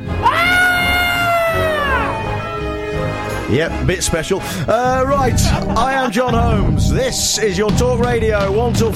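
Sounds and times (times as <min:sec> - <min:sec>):
shrill blood-curdling scream: 0:00.1 - 0:03.1
speech: 0:03.5 - 0:08.9.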